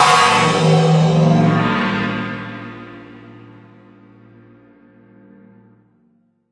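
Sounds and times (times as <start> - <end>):
morphed gong single hit: 0.0 - 3.8.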